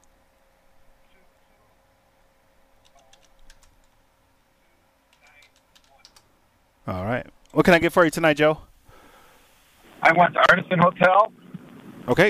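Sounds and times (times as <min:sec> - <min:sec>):
keyboard typing entering a phone number: 0:02.8 - 0:04.0, 0:05.1 - 0:06.3
speech: 0:06.9 - 0:08.7, 0:10.1 - 0:11.4, 0:12.0 - 0:12.2.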